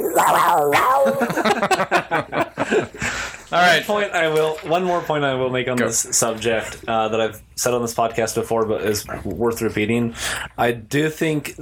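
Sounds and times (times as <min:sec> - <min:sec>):
man imitating a cat's cry: 0:00.0 - 0:01.4
speech: 0:00.2 - 0:11.6
laughter: 0:00.6 - 0:03.3.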